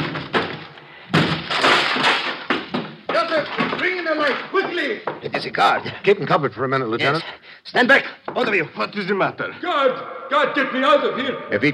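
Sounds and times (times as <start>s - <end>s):
door being broken down with splintering crashing blows: 0.0s - 4.0s
speech: 4.1s - 11.7s.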